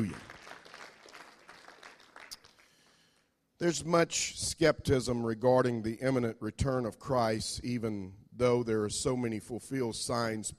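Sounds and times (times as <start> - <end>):
speech: 0.0 - 0.2, 3.6 - 10.5
audience clapping hands in praise: 0.0 - 2.6.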